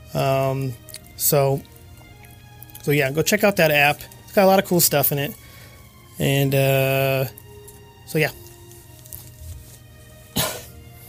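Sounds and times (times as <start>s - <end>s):
speech: 0.1s - 1.7s, 2.8s - 5.4s, 6.2s - 7.4s, 8.1s - 8.4s
person coughing: 10.3s - 10.8s.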